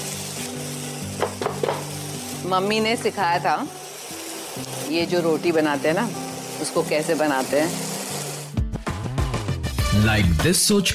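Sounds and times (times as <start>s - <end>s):
vegetables frying with red chili and turmeric spices: 0.0s - 9.0s
speech: 2.4s - 3.8s, 4.6s - 7.8s, 10.0s - 10.9s.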